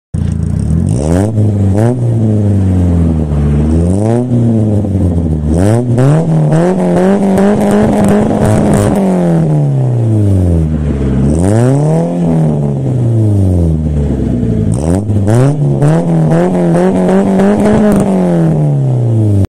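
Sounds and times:
Tornado car exhaust: 0:00.2 - 0:19.4.

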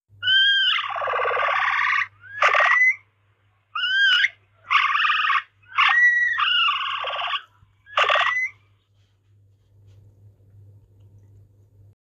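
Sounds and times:
nutria calling: 0:00.2 - 0:03.1, 0:03.7 - 0:08.7.

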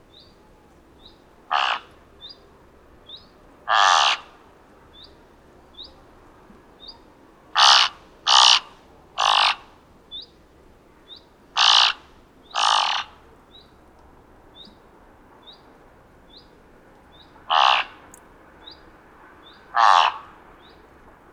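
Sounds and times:
thick-billed raven giving harsh caws: 0:01.5 - 0:02.0, 0:03.7 - 0:04.4, 0:07.5 - 0:09.8, 0:11.6 - 0:13.2, 0:17.5 - 0:18.1, 0:19.7 - 0:20.4.

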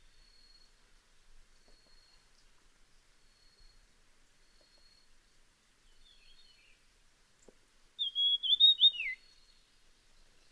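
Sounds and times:
dusky fulvetta giving a high whistled phrase: 0:08.0 - 0:09.4.

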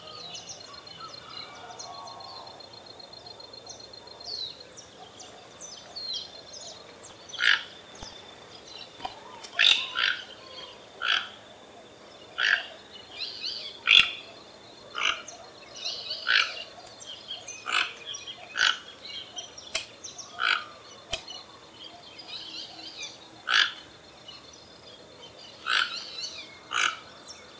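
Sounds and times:
small birds chirping and twittering: 0:00.0 - 0:27.5
toco toucan giving raspy croaks: 0:07.3 - 0:08.2, 0:09.0 - 0:11.4, 0:12.3 - 0:12.8, 0:14.9 - 0:15.3, 0:16.1 - 0:16.7, 0:17.6 - 0:19.0, 0:19.8 - 0:21.3, 0:23.4 - 0:23.9, 0:25.6 - 0:27.2.

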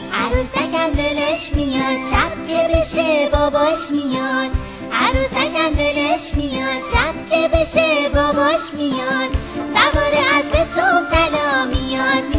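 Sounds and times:
person reciting a Persian children's poem: 0:00.1 - 0:12.3.

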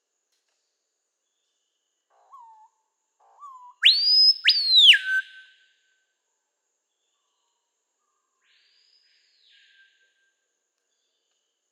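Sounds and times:
screaming piha whistled call: 0:03.5 - 0:05.7.

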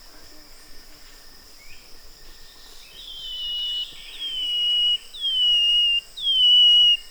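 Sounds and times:
brown-headed greenlet whistles: 0:03.3 - 0:07.0.

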